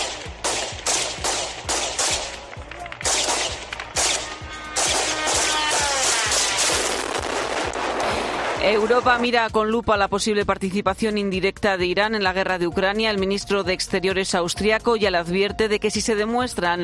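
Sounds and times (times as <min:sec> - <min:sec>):
police gunshots fired at a drone: 0:00.0 - 0:09.3
faint buzzing drone engine overhead: 0:01.5 - 0:06.6
speech: 0:08.7 - 0:16.8.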